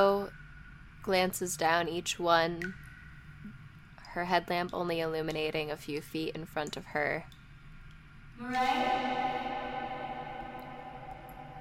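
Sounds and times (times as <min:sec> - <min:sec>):
speech: 0:01.0 - 0:02.8, 0:04.2 - 0:07.4, 0:08.4 - 0:09.5
sustained voice call echoing: 0:08.4 - 0:11.5.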